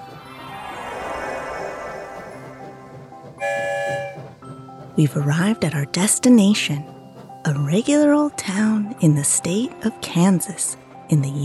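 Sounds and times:
train rumbling: 0.0 - 11.4
train horn toot: 3.4 - 4.4
speech: 5.0 - 7.0, 7.7 - 11.4.

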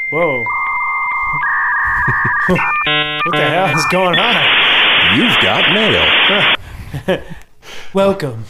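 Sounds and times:
dial-up modem connecting tones: 0.0 - 6.6
speech: 0.1 - 0.6, 2.2 - 8.4.

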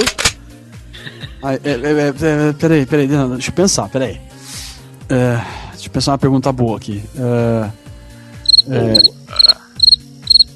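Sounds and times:
speech: 1.4 - 4.3, 5.1 - 7.8, 8.7 - 9.2
cricket chirping: 8.5 - 10.5.

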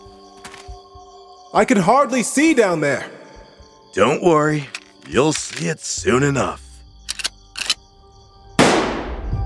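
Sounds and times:
speech: 1.5 - 3.2, 3.9 - 6.6
shotgun blast: 8.6 - 9.3.

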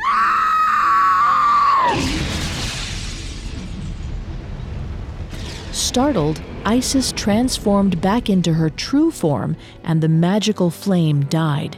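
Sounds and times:
queen screaming in horror at her burning child in a palace chamber: 0.0 - 2.0
rumbling noisy crash-like wash: 1.8 - 9.7
speech: 6.0 - 11.7.

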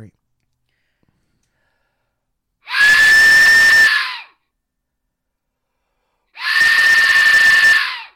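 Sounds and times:
speech: 0.0 - 0.2
replica Aztec death whistle blasts: 2.7 - 4.4, 6.4 - 8.1.

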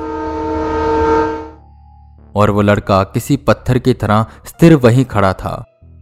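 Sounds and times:
train horn blaring through a forest: 0.0 - 1.7
speech: 2.4 - 5.7.

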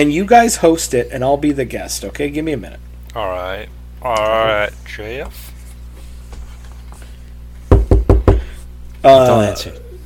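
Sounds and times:
speech: 0.0 - 5.5, 9.0 - 9.8
room noise: 0.0 - 10.0
knocking on a door: 7.7 - 8.5.

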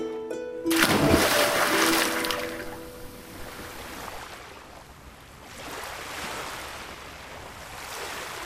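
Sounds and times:
splash of a man casting himself from a ship's deck into the sea: 0.7 - 4.3
sea waves rolling in and out: 0.7 - 8.4.

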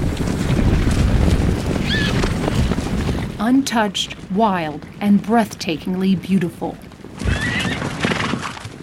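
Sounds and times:
herd of wild mustangs pounding hooves across high desert badlands: 0.0 - 8.8
wild mustangs whinnying and neighing in northern Wyoming high desert: 1.8 - 2.3, 7.2 - 8.7
speech: 3.4 - 6.9.

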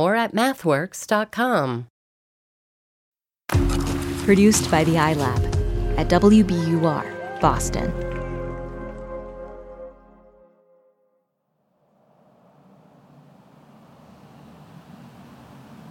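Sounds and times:
speech: 0.0 - 1.9, 4.3 - 8.1
short musical passage: 3.5 - 11.3
low car engine and road hiss: 11.8 - 15.8
traffic rumble heard from inside a car on a bridge: 12.0 - 15.8.

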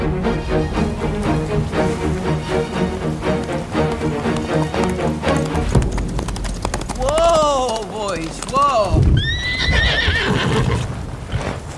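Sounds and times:
horse hooves clopping: 0.6 - 11.7
horses whinnying with high wavering neighs: 1.8 - 11.7
rider calling out to horses: 7.0 - 9.1.

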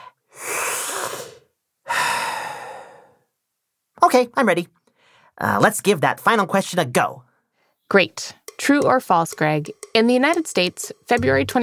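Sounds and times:
deep breath with long breathy inhale and slow exhale: 0.0 - 3.3, 4.9 - 5.4
speech: 4.1 - 4.8, 5.4 - 7.3, 7.9 - 11.6.

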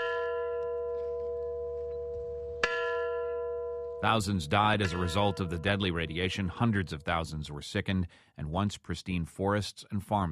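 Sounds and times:
large memorial bell tolling: 0.0 - 7.0
speech: 4.0 - 10.3.

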